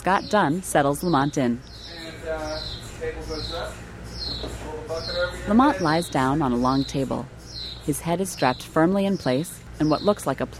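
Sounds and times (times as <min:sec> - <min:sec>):
speech: 0:00.0 - 0:01.7, 0:02.3 - 0:03.8, 0:04.4 - 0:10.5
MRI helium cooling pump chirping in squeaky warbling bursts: 0:00.0 - 0:10.5
steady low mechanical hum: 0:00.0 - 0:10.5.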